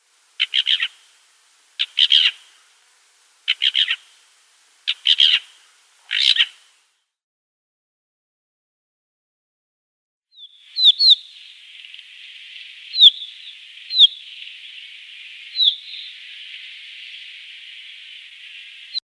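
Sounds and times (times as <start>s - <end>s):
Black Wheatear calling: 0.2s - 1.1s, 1.8s - 2.6s, 3.4s - 4.2s, 4.8s - 6.6s, 10.3s - 19.0s.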